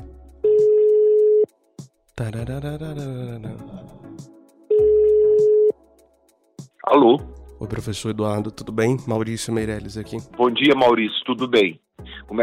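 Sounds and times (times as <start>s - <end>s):
telephone ringback tone from a call being placed: 0.5s - 1.5s, 4.7s - 5.7s
speech: 2.2s - 4.0s, 6.9s - 12.4s
brief wavering vocal sound: 2.2s - 4.2s.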